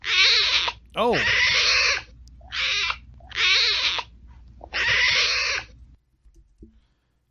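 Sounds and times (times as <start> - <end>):
Bengal tiger cubs mewing at their den in Chitwan Park: 0.0 - 5.7
person exclaiming: 1.0 - 1.3
speech: 1.0 - 1.6.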